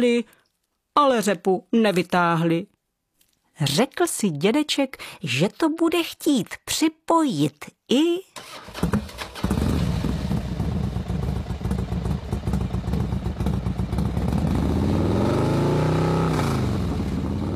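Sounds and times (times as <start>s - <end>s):
speech: 0.0s - 0.4s, 1.0s - 2.7s, 3.6s - 9.1s
motorcycle engine revving: 8.4s - 17.5s.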